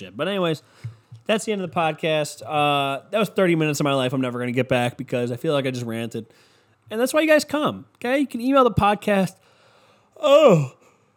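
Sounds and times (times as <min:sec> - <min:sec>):
speech: 0:00.0 - 0:09.5, 0:10.2 - 0:10.8
drawn-out voiced yawn: 0:10.2 - 0:11.0.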